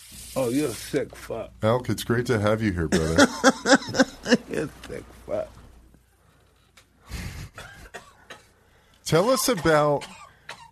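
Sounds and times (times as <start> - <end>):
speech: 0.4 - 5.6, 9.1 - 10.2
laughter: 2.9 - 5.0
man coughing: 7.4 - 8.6, 9.2 - 10.7.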